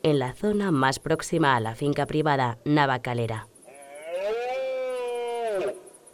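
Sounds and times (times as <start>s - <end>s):
speech: 0.0s - 3.5s
red deer stag bellowing in the autumn rut in northern Extremadura: 3.7s - 5.8s.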